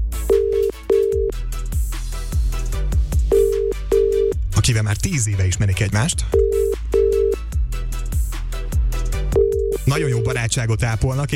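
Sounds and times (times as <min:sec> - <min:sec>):
rhythmic music bed with thumping bass: 0:00.0 - 0:11.3
phone line ringback tone beeping in short pulses: 0:00.3 - 0:01.3, 0:03.3 - 0:04.4, 0:06.4 - 0:07.4, 0:09.4 - 0:10.4
speech: 0:04.7 - 0:06.8, 0:10.0 - 0:11.3.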